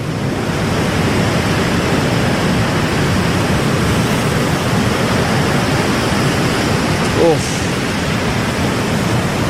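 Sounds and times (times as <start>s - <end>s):
sea waves washing on the coast: 0.0s - 9.4s.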